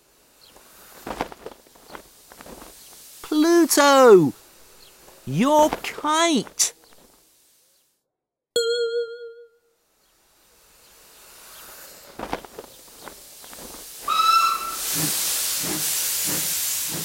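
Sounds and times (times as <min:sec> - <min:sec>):
hissing steam from a steam train: 0:00.0 - 0:07.8, 0:10.0 - 0:17.0
speech: 0:03.3 - 0:04.4, 0:05.3 - 0:06.8
ringing chime: 0:08.6 - 0:09.6
steam train chuffs and rhythmic puffing: 0:13.2 - 0:17.0
short shrill steam train whistle: 0:14.1 - 0:15.4.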